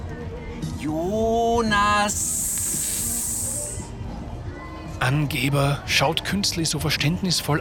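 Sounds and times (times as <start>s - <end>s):
low murmuring background: 0.0s - 7.5s
speech: 0.8s - 2.4s, 5.1s - 7.5s
person hissing to call a dog: 2.4s - 3.9s.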